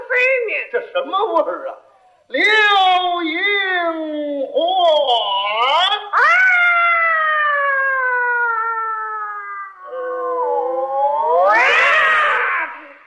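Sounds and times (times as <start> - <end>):
speech: 0.2 - 5.7
cats fighting and yowling: 6.2 - 13.0.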